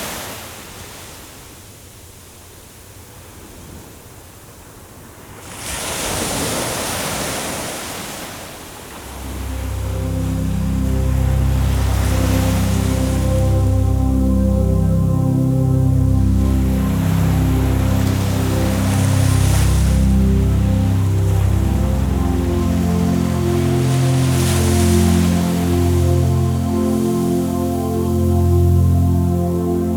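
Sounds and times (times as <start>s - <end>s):
ocean waves: 5.6s - 29.9s
healing relaxation music: 9.0s - 29.9s.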